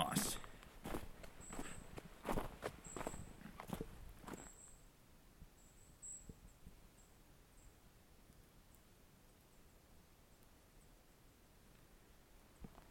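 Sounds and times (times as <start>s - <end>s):
footsteps on gravel on a woodland path: 0.2s - 4.5s
faint high thin chirping: 5.6s - 7.7s.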